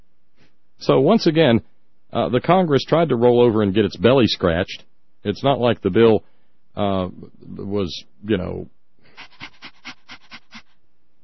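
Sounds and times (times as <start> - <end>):
speech: 0.8 - 9.4
puppy panting: 9.2 - 10.7.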